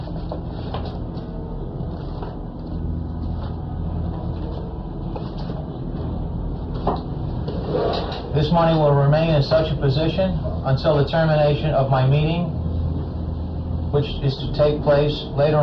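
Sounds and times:
steady hum: 0.0 - 15.6
desk drawer sliding open and shut: 7.5 - 8.4
speech: 8.4 - 12.6, 14.0 - 15.6.

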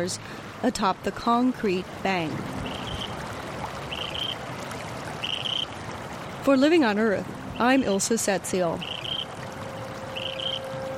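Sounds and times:
speech: 0.0 - 2.6, 6.4 - 9.0
stream water flowing: 0.0 - 10.9
birds chirping: 2.6 - 3.2, 3.8 - 4.4, 5.2 - 5.8, 8.7 - 9.3, 10.1 - 10.7.

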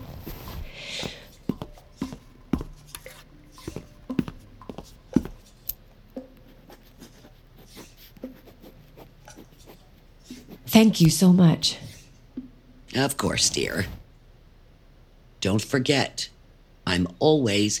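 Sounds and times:
pen writing a phone number on paper: 6.5 - 11.1
speech: 10.8 - 11.8, 13.0 - 14.0, 15.4 - 16.3, 16.9 - 17.7.

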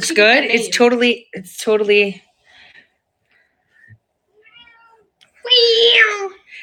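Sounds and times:
speech: 0.1 - 2.3, 5.5 - 6.4
cat meowing: 4.3 - 6.4.

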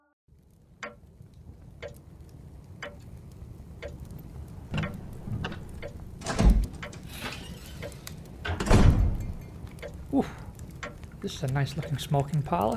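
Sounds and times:
door swinging shut with heavy thuds: 4.7 - 7.4, 8.4 - 9.4
latch and frame clicks and knocks: 4.8 - 9.2
speech: 10.2 - 10.4, 11.2 - 12.7.

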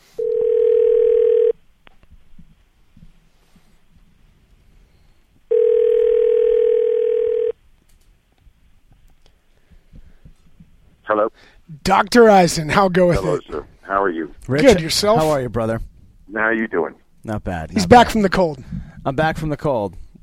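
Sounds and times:
telephone line tone on a call being dialed: 0.1 - 1.6, 5.5 - 7.6
speech: 11.9 - 20.0.

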